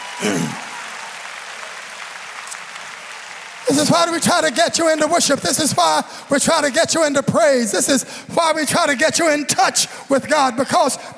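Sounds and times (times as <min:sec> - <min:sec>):
congregation voices cheering: 0:00.0 - 0:06.7
congregation clapping hands: 0:00.0 - 0:07.1
speech: 0:00.2 - 0:00.6, 0:03.7 - 0:11.1.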